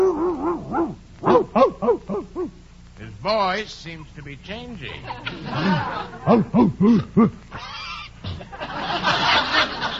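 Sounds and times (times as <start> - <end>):
dog in a kennel howling and barking: 0.0 - 2.6
speech: 3.3 - 7.7
laughter: 5.0 - 9.9.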